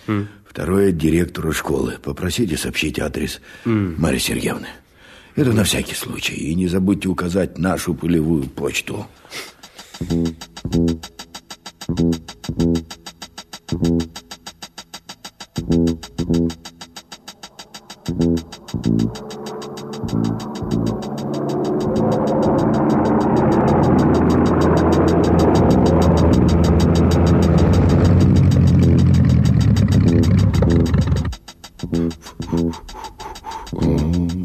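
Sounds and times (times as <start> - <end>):
speech: 0.0 - 11.3, 11.9 - 13.1, 13.7 - 14.3, 15.6 - 16.8, 18.1 - 19.4, 20.0 - 22.7
much-holed and patched propeller plane engine sputtering and droning: 9.7 - 34.4.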